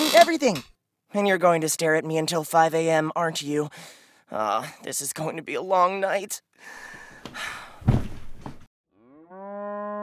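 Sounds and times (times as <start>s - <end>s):
speech: 0.2s - 8.0s
cow mooing: 9.0s - 10.0s.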